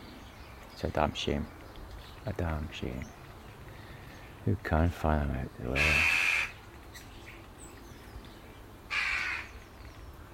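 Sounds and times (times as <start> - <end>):
speech: 0.8 - 1.6, 2.2 - 3.2, 4.4 - 6.2
crows cawing while fighting magpies: 5.7 - 6.6, 8.9 - 9.6.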